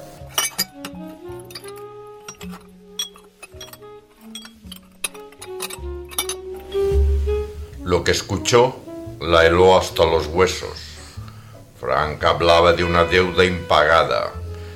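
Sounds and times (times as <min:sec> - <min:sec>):
dishes clattering: 0:00.0 - 0:06.8
glass clinking as it is adjusted on a serving tray: 0:00.3 - 0:06.4
speech: 0:08.0 - 0:10.8, 0:12.0 - 0:14.4.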